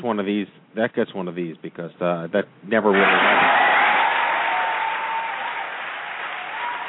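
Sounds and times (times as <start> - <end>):
speech: 0.0 - 3.6
large crowd applauding loudly: 2.9 - 6.8.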